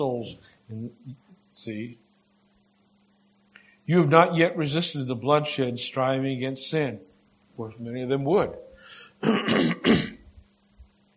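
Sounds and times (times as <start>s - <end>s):
speech: 0.0s - 2.1s, 3.9s - 10.1s
speaker clearing throat mid-sermon: 9.2s - 10.3s.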